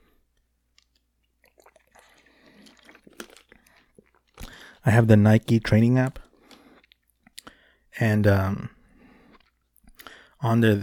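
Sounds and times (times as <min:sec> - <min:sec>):
mouth clicks and smacks: 0:00.7 - 0:04.8, 0:06.1 - 0:07.6, 0:09.3 - 0:10.2
person sipping and swallowing water: 0:00.8 - 0:04.8, 0:06.2 - 0:07.8, 0:08.9 - 0:10.4
speech: 0:04.8 - 0:06.2, 0:08.0 - 0:08.8, 0:10.4 - 0:10.8.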